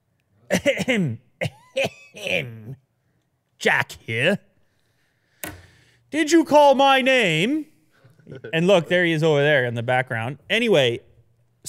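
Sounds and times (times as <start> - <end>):
deliberate put-on cough: 0.5 - 2.8
speech: 0.5 - 2.8, 3.6 - 4.5, 6.1 - 7.7, 8.3 - 11.1.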